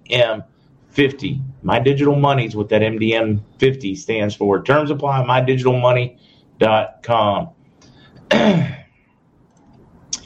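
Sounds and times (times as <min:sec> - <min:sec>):
speech: 0:00.1 - 0:07.6, 0:08.3 - 0:08.8
harsh throat clearing: 0:08.3 - 0:09.0.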